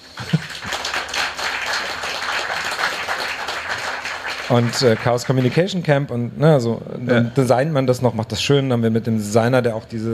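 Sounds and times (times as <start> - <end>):
audience applauding: 0.0 - 5.9
speech: 4.5 - 10.1.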